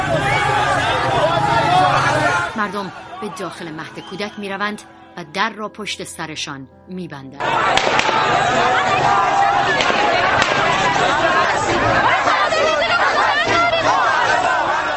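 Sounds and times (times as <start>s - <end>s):
panicked crowd clamoring inside a kindergarten: 0.0s - 5.1s, 7.4s - 14.9s
speech: 2.6s - 12.8s
laughter: 7.4s - 14.9s
sharp gunshot-like cracks: 7.6s - 11.8s.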